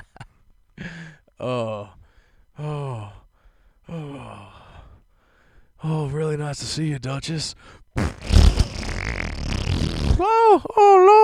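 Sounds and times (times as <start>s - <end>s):
speech: 1.4s - 2.0s, 6.3s - 7.8s, 10.2s - 11.2s
fart: 8.0s - 10.3s.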